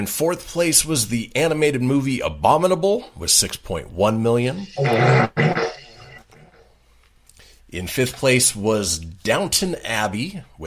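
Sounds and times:
speech: 0.0s - 5.6s, 7.7s - 10.6s
fart sound effect from a soundboard button: 4.6s - 6.7s.

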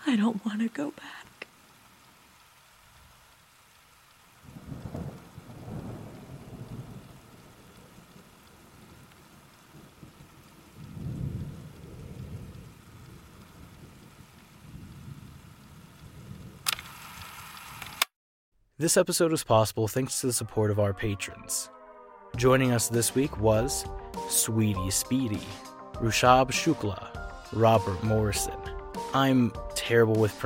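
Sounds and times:
steady rain hissing: 0.0s - 18.1s, 22.4s - 30.4s
speech: 0.1s - 1.3s, 18.8s - 30.4s
low rolling thunder: 4.4s - 16.6s.

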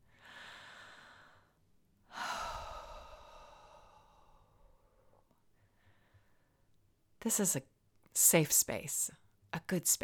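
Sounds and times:
slow deep breath: 0.0s - 6.6s
speech: 7.2s - 10.0s.

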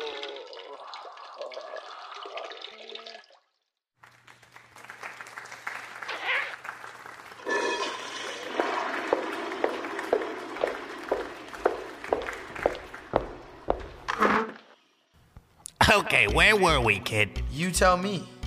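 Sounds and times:
man urinating into a toilet: 0.0s - 3.6s, 7.4s - 13.2s
speech: 15.9s - 18.3s.

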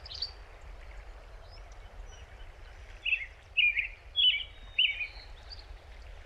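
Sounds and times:
American robin caroling slurred whistled phrases in Big Thompson Canyon Colorado: 0.0s - 0.4s, 3.0s - 5.6s.

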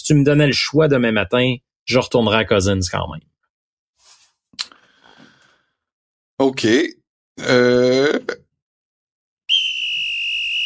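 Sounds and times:
speech: 0.1s - 3.3s, 6.4s - 8.4s
shrill whistle blast: 9.5s - 10.6s.

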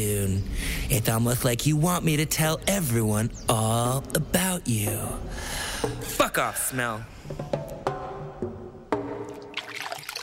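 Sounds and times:
speech: 0.0s - 7.7s
plops and drips of cold toilet water while washing underwear: 9.3s - 10.2s.

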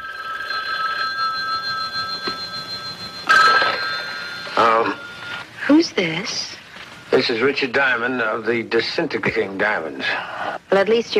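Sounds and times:
telephone bell ringing: 0.0s - 5.6s
speech: 5.7s - 11.1s.

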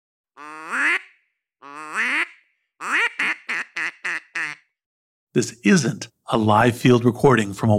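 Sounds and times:
duck call instrument quacking: 0.4s - 4.7s
speech: 5.4s - 7.7s.

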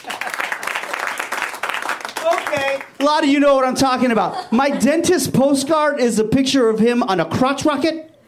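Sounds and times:
crowd applauding: 0.0s - 3.2s
speech: 2.5s - 8.1s
laughter: 3.8s - 5.4s.

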